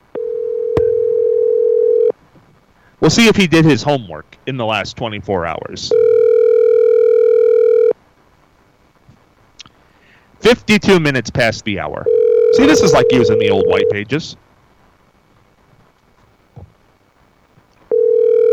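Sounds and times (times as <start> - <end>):
electronic ring tone of an outgoing phone call: 0.1 - 2.1, 5.9 - 7.9, 12.1 - 14.0, 17.9 - 18.5
speech: 3.0 - 6.1, 10.4 - 14.5.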